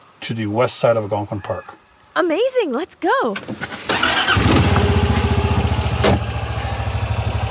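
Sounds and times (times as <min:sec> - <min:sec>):
speech: 0:00.3 - 0:04.2
truck engine cranking, starting and running with a low throbbing rumble: 0:03.4 - 0:07.4.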